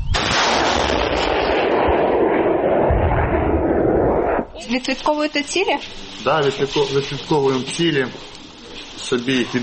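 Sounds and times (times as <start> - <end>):
artillery gun blast: 0.1 - 4.5
speech: 4.7 - 8.3, 9.1 - 9.6.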